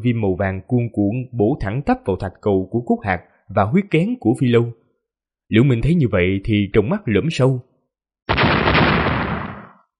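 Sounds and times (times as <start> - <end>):
speech: 0.0 - 4.8, 5.5 - 7.7
loud broadband explosion blast: 8.3 - 9.8.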